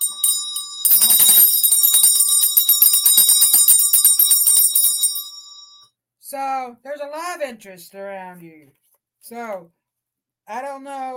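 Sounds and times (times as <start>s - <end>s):
bright metallic bell ringing rapidly: 0.0s - 5.8s
speech: 6.3s - 9.8s, 10.5s - 11.1s.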